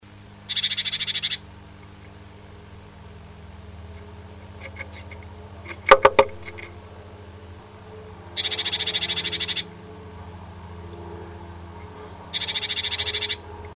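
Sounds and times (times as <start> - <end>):
bird calls during nest building at a nest box: 0.5 - 2.2, 3.9 - 6.8, 8.3 - 9.8, 11.8 - 13.5.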